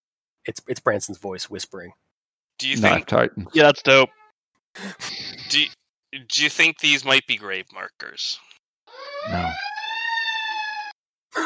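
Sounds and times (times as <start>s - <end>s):
speech: 0.4s - 4.2s, 4.8s - 8.5s, 9.2s - 9.8s
siren from a fire station: 8.9s - 10.9s.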